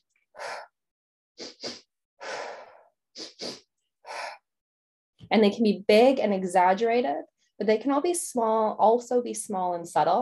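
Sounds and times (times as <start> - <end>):
quick sharp inhales in a yoga breathing exercise: 1.4 - 4.4
speech: 5.3 - 10.2.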